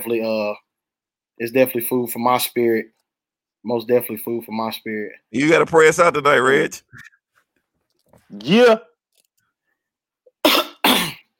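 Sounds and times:
speech: 0.0s - 0.6s, 1.4s - 3.0s, 3.6s - 7.2s, 8.3s - 8.9s
person coughing: 10.4s - 11.3s.

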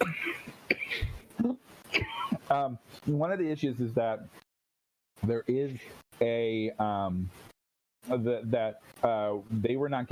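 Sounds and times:
person coughing: 0.0s - 2.4s
speech: 2.5s - 4.4s, 5.2s - 10.1s.

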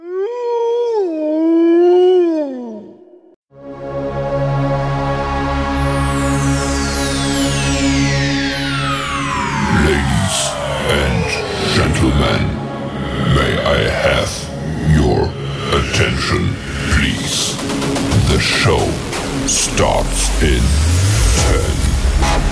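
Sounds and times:
wolf howling: 0.0s - 3.3s
loud dense rumbling drone with falling sweeps: 4.9s - 22.4s.

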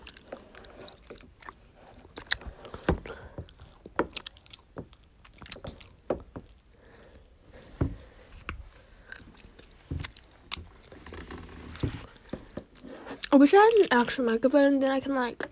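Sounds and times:
chewing sticky waxy honeycomb: 0.0s - 7.3s, 8.9s - 11.0s
speech: 13.4s - 15.4s.

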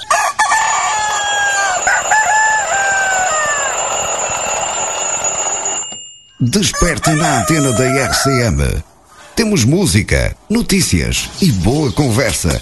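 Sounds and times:
rooster crowing loud and close: 0.0s - 5.8s, 6.6s - 8.6s
steady high-pitched ringing tone: 1.6s - 6.6s
speech: 6.4s - 12.6s.

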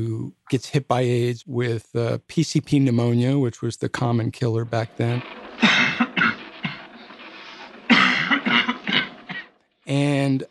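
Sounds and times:
speech: 0.0s - 5.8s, 9.9s - 10.4s
man coughing: 5.6s - 6.4s, 7.9s - 9.5s.

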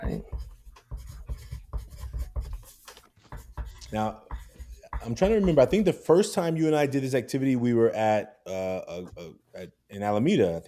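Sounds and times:
pen or pencil writing on paper: 0.0s - 5.9s
speech: 3.9s - 4.3s, 5.0s - 10.6s.

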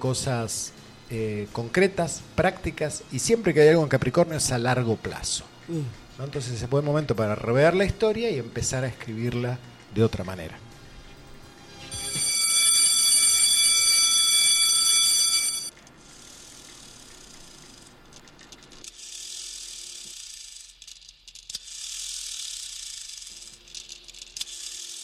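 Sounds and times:
speech: 0.0s - 10.7s
loud electric bell ringing with a harsh buzzing metallic tone: 11.6s - 15.8s.

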